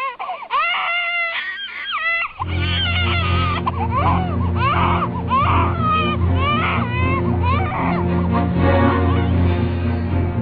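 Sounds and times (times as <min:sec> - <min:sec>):
young child crying and sobbing while spitting out biscuits: 0:00.0 - 0:06.9
low steady rumbling background: 0:02.4 - 0:10.4.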